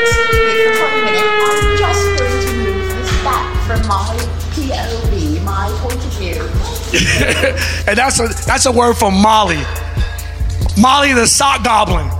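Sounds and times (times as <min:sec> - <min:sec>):
siren sound effect wailing: 0:00.0 - 0:06.6
steady deep drone: 0:00.0 - 0:12.1
laughter: 0:06.9 - 0:08.4
speech: 0:07.4 - 0:09.8, 0:10.8 - 0:12.1.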